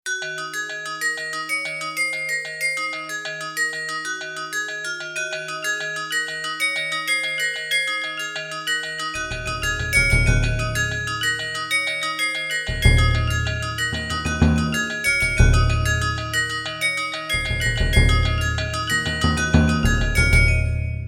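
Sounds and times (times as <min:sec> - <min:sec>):
bells: 0:00.1 - 0:21.0
drums: 0:09.2 - 0:11.0, 0:12.7 - 0:16.2, 0:17.4 - 0:20.8.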